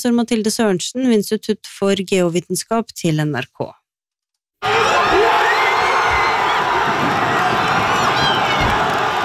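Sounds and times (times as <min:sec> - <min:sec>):
speech: 0:00.0 - 0:03.8
large crowd cheering at a football match: 0:04.6 - 0:09.2.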